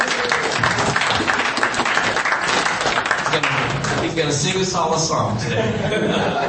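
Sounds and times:
audience applauding: 0:00.0 - 0:04.3
speech: 0:04.1 - 0:06.4
laughter: 0:05.4 - 0:06.4.

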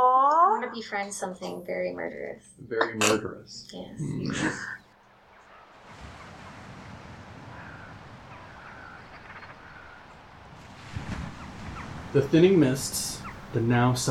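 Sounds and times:
speech: 0:00.7 - 0:04.8, 0:12.1 - 0:14.0
gentle waves lapping on rocks and sand in a cold wind: 0:04.9 - 0:14.0.

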